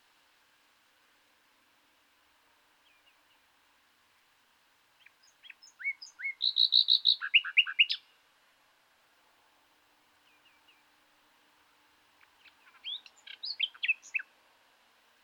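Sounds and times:
common nightingale Luscinia megarhynchos song of whistled notes and chirps: 2.8 - 3.4, 5.0 - 8.2, 10.2 - 10.9, 12.2 - 14.3.

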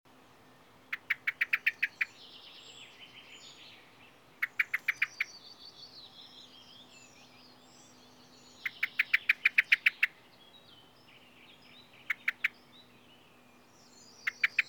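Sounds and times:
common blackbird Turdus merula giving sharp clicking chink calls: 0.4 - 14.6
common blackbird Turdus merula softer warbling: 0.9 - 10.2, 13.8 - 14.6.

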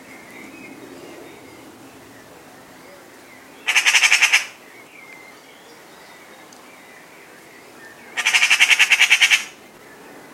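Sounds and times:
Eurasian magpie Pica pica chattering: 3.6 - 4.6, 8.2 - 9.6.

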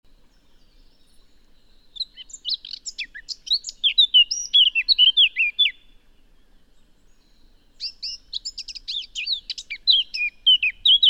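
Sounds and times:
Eurasian blackcap Sylvia atricapilla singing: 0.4 - 5.9, 7.1 - 11.0.

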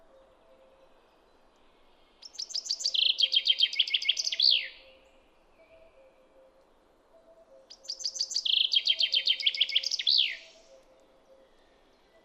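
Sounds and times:
common chaffinch Fringilla coelebs singing a rattling descending trill: 2.2 - 4.8, 7.7 - 10.5.

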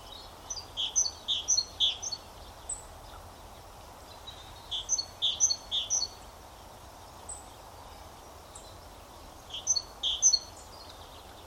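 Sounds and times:
great tit Parus major chirping calls: 0.0 - 2.9, 4.1 - 6.2, 9.4 - 11.4
background hiss: 0.0 - 11.4.

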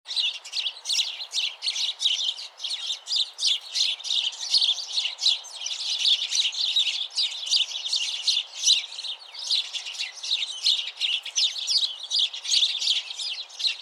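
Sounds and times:
house sparrow Passer domesticus chirping: 0.1 - 13.8.

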